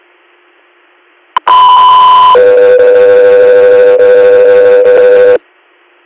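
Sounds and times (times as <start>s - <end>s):
two-tone radio dispatch alert tones: 1.4s - 5.4s.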